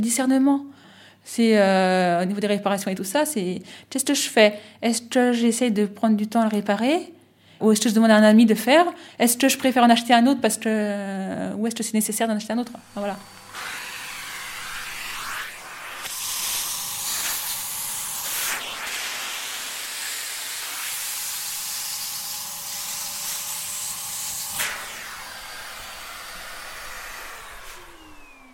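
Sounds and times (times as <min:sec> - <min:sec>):
speech: 0:00.0 - 0:13.7
wheeled canister vacuum cleaner running: 0:12.6 - 0:28.5.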